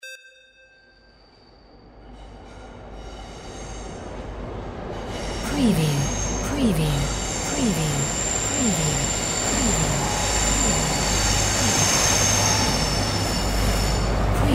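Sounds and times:
train brakes: 5.0 - 14.4.

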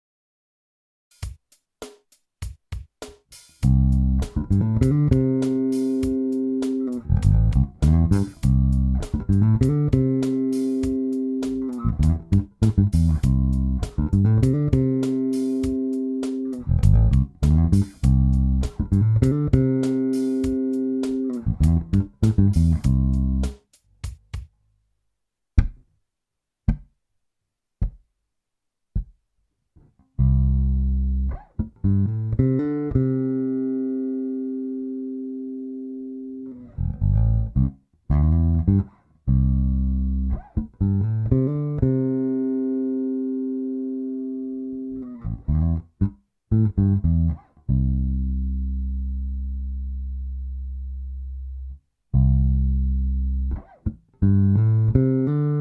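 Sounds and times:
major pentatonic bassline fills in C: 3.3 - 24.5, 30.0 - 55.6.

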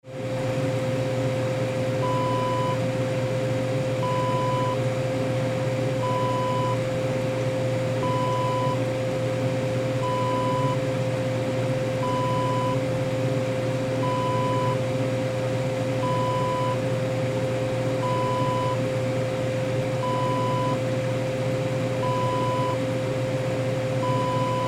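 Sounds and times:
ice machine hum: 0.0 - 24.6.

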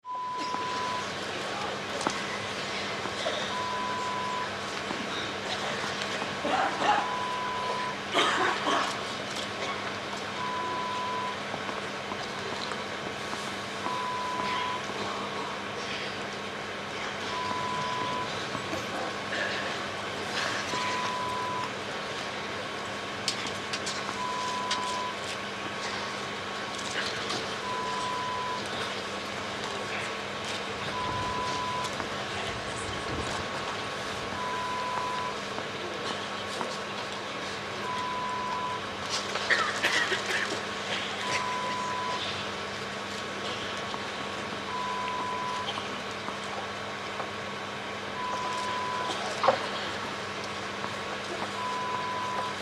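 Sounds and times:
hushed crowd at Wimbledon: 0.1 - 52.6.

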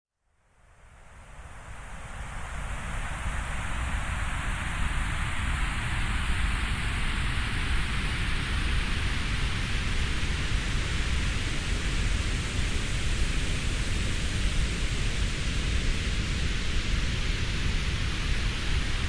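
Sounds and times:
sweeping grey noise: 1.4 - 19.0.

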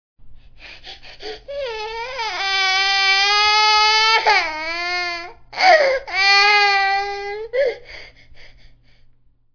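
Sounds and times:
baby crying in a crib: 1.0 - 8.1.

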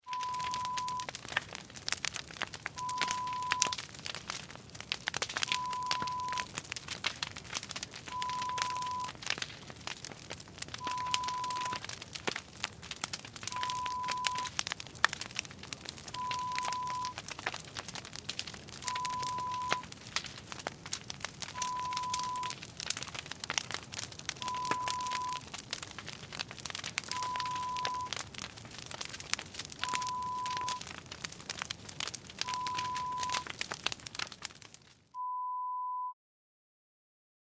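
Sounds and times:
fire burning: 0.0 - 35.2.

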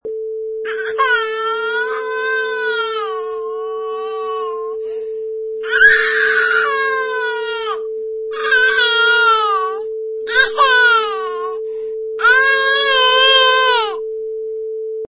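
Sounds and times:
baby crying: 0.7 - 4.8, 5.6 - 11.6, 12.2 - 14.0.

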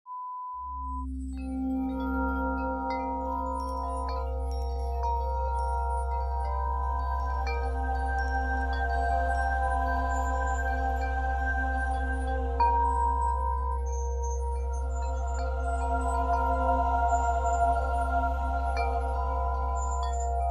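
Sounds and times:
chimes: 0.6 - 20.5.

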